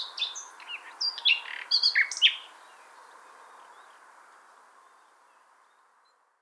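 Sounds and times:
Common nightingale Luscinia megarhynchos song: 0.0 - 3.9.

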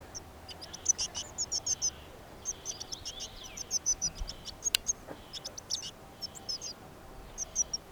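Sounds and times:
Eurasian blue tit Cyanistes caeruleus calling: 0.0 - 7.9
faint steady background hiss: 0.0 - 7.9.

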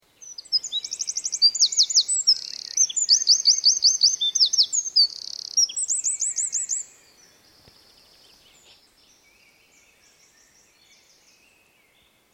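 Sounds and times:
Eurasian wren singing: 0.2 - 12.1.

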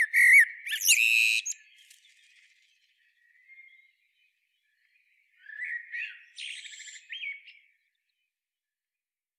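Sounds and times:
common blackbird Turdus merula fluted whistle song: 0.0 - 1.9, 5.4 - 7.6.

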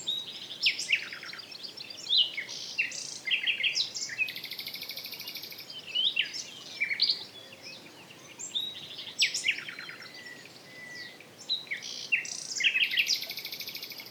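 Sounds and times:
Common nightingale Luscinia megarhynchos song of whistled slurs and rattling trills: 0.0 - 14.0.

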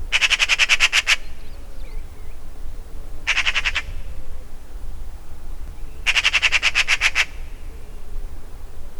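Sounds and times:
faint low background noise: 0.0 - 8.9
Eurasian magpie Pica pica rasping chatter: 0.1 - 1.3, 3.3 - 3.9, 6.1 - 7.4.

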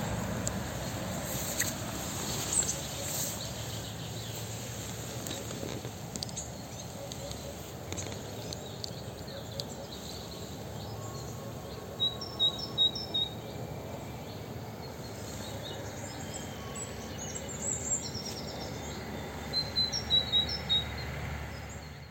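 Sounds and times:
steady hiss: 0.0 - 9.2
Parus major great tit calling: 0.8 - 21.8.

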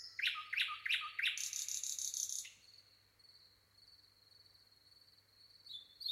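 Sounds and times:
common nightingale Luscinia megarhynchos singing: 0.0 - 2.9, 5.6 - 6.0.

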